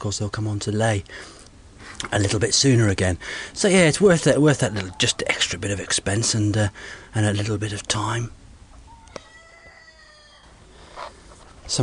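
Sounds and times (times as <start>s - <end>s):
speech: 0.0s - 1.4s, 2.0s - 8.4s
soft hiss: 0.0s - 11.8s
bantam cockerel crowing: 8.7s - 11.1s.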